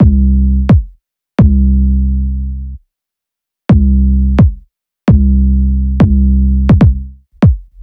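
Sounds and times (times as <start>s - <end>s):
kick bass drum: 0.0s - 1.8s, 3.7s - 5.4s, 6.0s - 7.8s.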